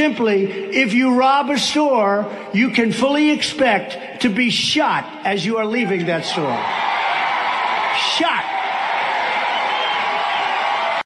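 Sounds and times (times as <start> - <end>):
speech: 0.0 - 7.0, 8.0 - 8.6
crowd cheering and whooping: 6.4 - 11.0.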